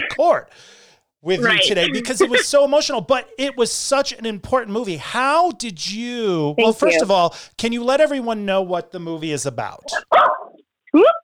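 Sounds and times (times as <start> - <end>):
speech: 0.2 - 11.2
laughter: 1.3 - 4.1, 6.6 - 7.2
dog barking: 9.9 - 10.6.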